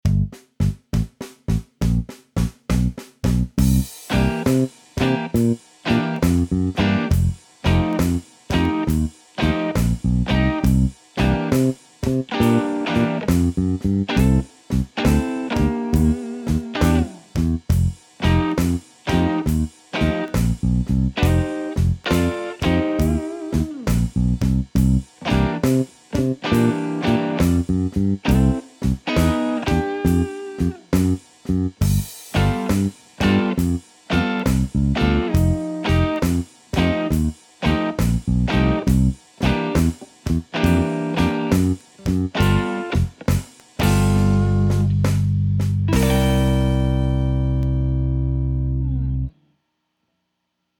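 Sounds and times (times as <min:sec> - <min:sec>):
blues backing track: 0:00.1 - 0:49.3.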